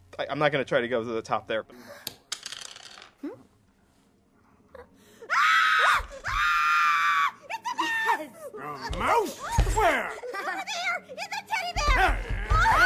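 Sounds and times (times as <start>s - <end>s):
speech: 0.2s - 2.2s
woman's shrill terrified screams: 5.3s - 9.6s, 11.6s - 12.8s.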